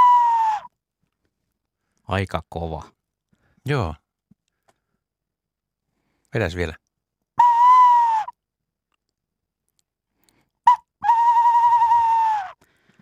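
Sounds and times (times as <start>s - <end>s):
tawny owl call blown on a decoy whistle: 0.0s - 0.7s, 7.4s - 8.4s, 10.7s - 12.6s
speech: 2.1s - 3.0s, 3.6s - 4.0s, 6.3s - 6.8s.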